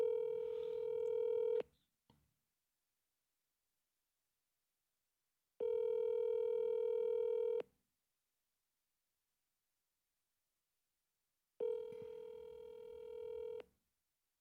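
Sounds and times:
outgoing phone call electronic ring tones: 0.0s - 1.6s, 5.7s - 7.6s, 11.6s - 13.6s.

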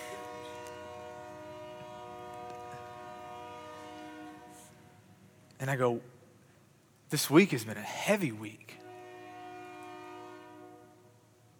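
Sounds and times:
passing train horn blast: 0.0s - 5.1s, 8.7s - 11.3s
speech: 5.6s - 6.2s, 7.1s - 8.8s.

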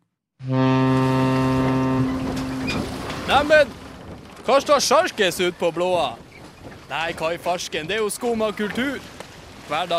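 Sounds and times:
boat horn blast: 0.4s - 4.0s
speech: 3.3s - 3.8s, 4.5s - 6.3s, 6.9s - 9.9s.

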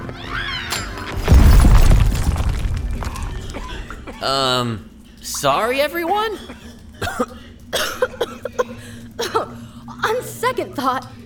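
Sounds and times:
mini energy explosion from a thrown diamond shattering on impact: 0.7s - 4.4s
speech: 4.2s - 6.6s, 10.6s - 11.2s.

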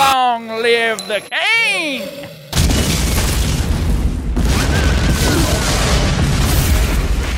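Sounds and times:
speech: 0.6s - 2.4s
grenade explosion: 2.5s - 7.3s.

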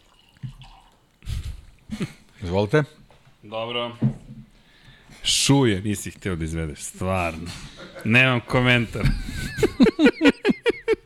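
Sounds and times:
late harvest wine pouring into a glass: 0.0s - 1.1s
speech: 1.9s - 4.1s, 5.5s - 10.3s
laughter: 7.5s - 11.0s.

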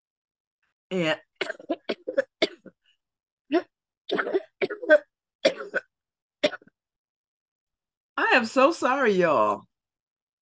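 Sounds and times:
speech: 0.9s - 1.8s, 3.5s - 4.3s, 8.4s - 9.7s
dry coughing from a tickle in the throat: 1.4s - 2.8s, 3.6s - 6.7s.

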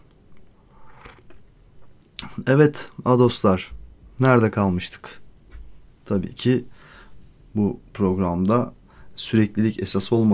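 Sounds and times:
low hum: 0.0s - 10.3s
sipping tea: 0.3s - 2.2s
speech: 2.4s - 5.2s, 6.1s - 6.8s, 7.6s - 10.3s.

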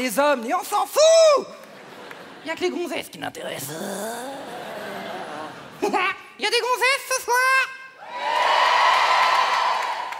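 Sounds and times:
speech: 0.0s - 1.7s, 2.4s - 4.8s, 5.8s - 7.7s
laughter: 1.6s - 3.0s, 3.6s - 6.2s
loud audience shouting and cheering: 7.9s - 10.1s.

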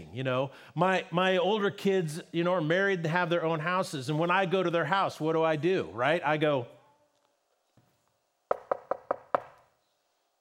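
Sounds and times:
speech: 0.1s - 6.8s
knocking on the door of a house: 8.5s - 9.6s.

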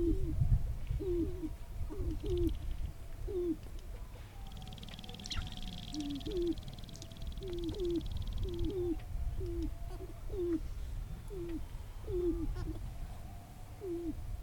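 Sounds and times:
sharp-tailed grouse display calls while lekking in tall prairie grasslands: 0.0s - 14.2s
low wind rumble: 0.0s - 14.4s.

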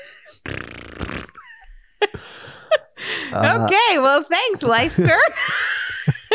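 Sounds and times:
blubbery lip raspberry mouth-fart noise: 0.0s - 2.4s
breathy vocal noise: 0.0s - 3.8s
laughter: 2.0s - 6.3s
speech: 3.3s - 5.7s.

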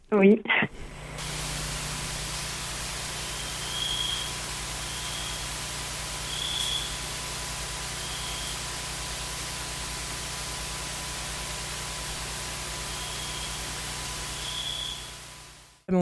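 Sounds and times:
speech: 0.1s - 0.9s
soft hiss of a quiet tropical forest: 0.9s - 15.8s
crickets chirping in a tropical forest: 1.4s - 9.7s, 12.7s - 15.5s.

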